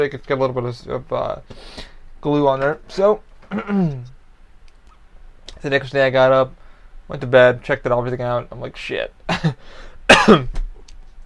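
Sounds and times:
speech: 0:00.0 - 0:04.2, 0:05.6 - 0:10.7
person coughing from a tickle in the throat: 0:03.5 - 0:04.1, 0:09.3 - 0:10.6
throat clearing: 0:03.5 - 0:04.1.

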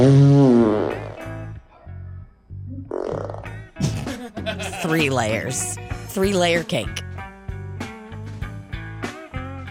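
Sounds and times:
speech: 0:00.0 - 0:00.6, 0:04.9 - 0:07.0
long loud fart: 0:00.0 - 0:01.5, 0:02.8 - 0:04.1
laughter: 0:04.0 - 0:05.3.

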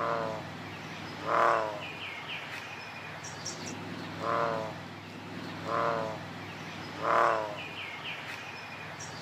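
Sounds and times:
bullfrog calling: 0:00.0 - 0:02.1, 0:04.1 - 0:04.9, 0:05.5 - 0:06.3, 0:06.9 - 0:07.9
faint birds chirping: 0:00.0 - 0:09.2
soft outdoor ambience: 0:00.0 - 0:09.2.

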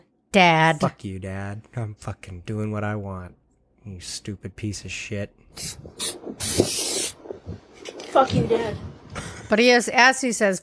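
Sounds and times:
speech: 0:00.4 - 0:06.9, 0:07.5 - 0:10.6
spray paint hissing from an aerosol can onto a car: 0:05.6 - 0:07.2.

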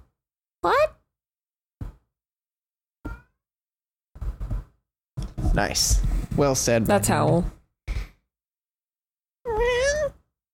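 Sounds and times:
speech: 0:05.6 - 0:07.6
cat meowing: 0:09.5 - 0:10.2.

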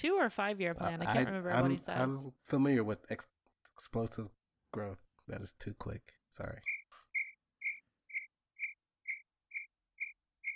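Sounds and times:
speech: 0:00.0 - 0:06.8
cricket chirping: 0:06.7 - 0:10.5.

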